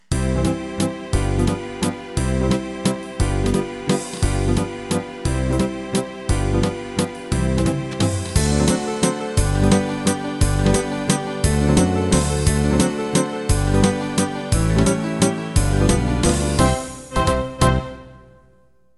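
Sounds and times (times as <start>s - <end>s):
Viennese waltz music: 0.0s - 18.9s.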